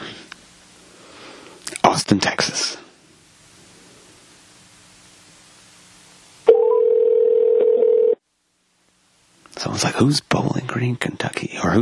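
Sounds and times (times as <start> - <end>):
speech: 2.0 - 2.8, 10.0 - 11.8
telephone line hiss: 6.4 - 8.2.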